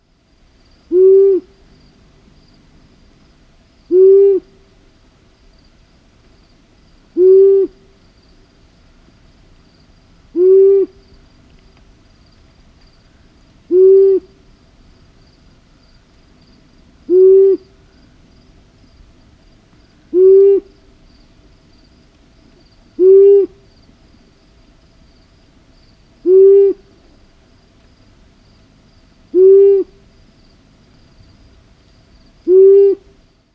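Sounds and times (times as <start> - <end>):
long-eared owl male advertising song: 0.7 - 2.5, 3.8 - 4.9, 7.1 - 8.4, 10.3 - 11.5, 13.1 - 14.6, 17.0 - 18.2, 20.0 - 21.3, 22.5 - 23.9, 26.2 - 27.3, 29.3 - 30.2, 32.3 - 33.2.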